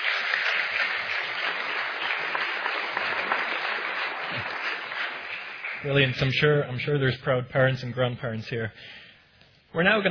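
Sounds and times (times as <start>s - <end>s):
audience applause: 0.0s - 6.6s
speech: 5.8s - 9.0s, 9.7s - 10.0s.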